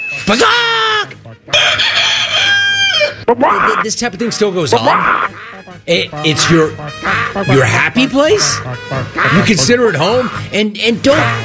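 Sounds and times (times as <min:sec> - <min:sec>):
speech: 0:00.3 - 0:00.8, 0:03.3 - 0:11.4
rooster crowing: 0:01.5 - 0:03.2.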